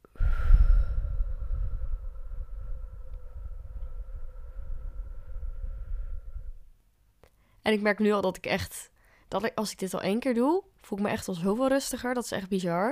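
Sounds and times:
slow deep breathing through the nose as a stress-calming exercise: 0.0s - 7.6s
faint steady hum: 0.0s - 9.4s
speech: 7.6s - 12.9s.

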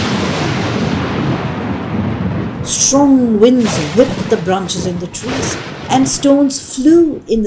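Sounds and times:
thunder rumbling: 0.0s - 7.4s
speech: 2.8s - 7.4s.

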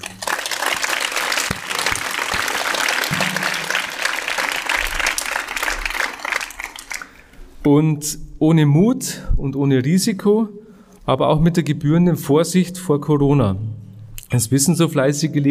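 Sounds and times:
large audience applauding: 0.0s - 7.3s
speech: 7.6s - 15.4s.

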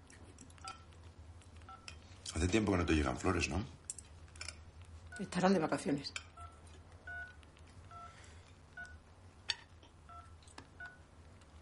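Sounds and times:
low hum: 0.0s - 11.6s
speech: 2.3s - 3.8s, 5.2s - 6.3s
short electronic ringtones from a mobile phone being tested: 6.4s - 8.2s, 10.1s - 11.1s.

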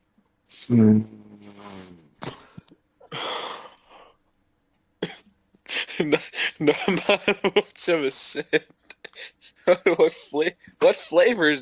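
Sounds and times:
speech: 0.6s - 1.9s, 6.0s - 11.5s
person sniffing inside a bag of wings: 1.4s - 4.0s.

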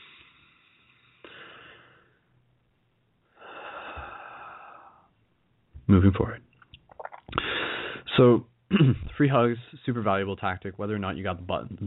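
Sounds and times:
slow deep calming breath: 0.0s - 2.4s, 3.2s - 5.2s, 7.3s - 8.1s
speech: 5.9s - 6.5s, 8.2s - 11.8s.

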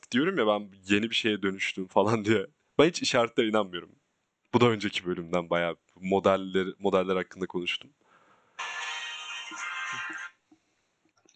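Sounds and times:
speech: 0.1s - 8.0s
mobile phone ringing: 8.6s - 10.3s.

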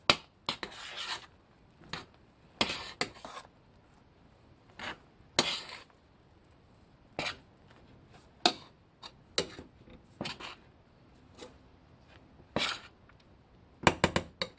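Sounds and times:
spoon scraping and knocking in a pan mixing flour into cooked dough: 0.1s - 3.5s, 4.7s - 5.9s, 7.2s - 10.7s, 11.3s - 11.6s, 12.5s - 13.0s, 13.8s - 14.5s.

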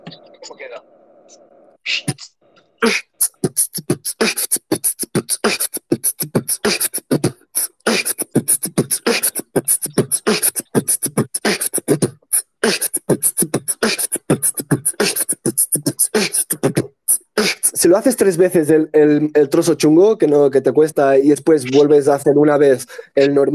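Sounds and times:
speech: 0.5s - 3.3s, 17.8s - 23.5s
voice imitating a drum kit beat with bass drum, snare and cymbal: 1.9s - 18.0s.

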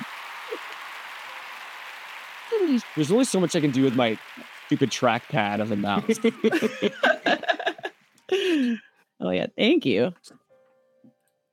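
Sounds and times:
applause sound effect: 0.0s - 8.6s
speech: 2.5s - 7.4s, 8.3s - 10.4s
laughter: 2.6s - 8.8s.

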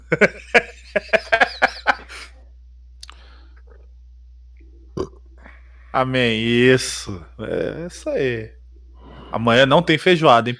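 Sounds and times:
laughter: 0.0s - 2.3s
speech: 0.1s - 0.5s, 6.0s - 8.6s, 9.3s - 10.5s
burp: 5.0s - 5.3s.

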